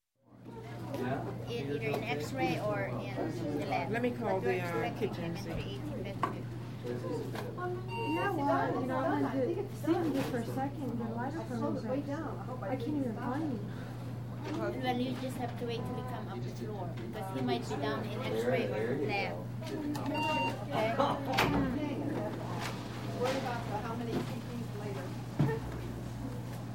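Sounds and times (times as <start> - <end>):
voices at a hospital nurses station: 0.6 - 26.6
beeps at a hospital nurses station: 7.9 - 8.4, 20.1 - 20.6.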